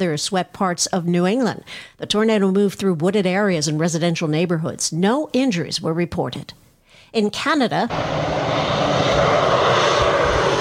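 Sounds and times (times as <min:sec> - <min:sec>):
speech: 0:00.0 - 0:08.6
firefighting airplane engines working over wildfires in Canada's Northwest Territories: 0:07.9 - 0:10.5.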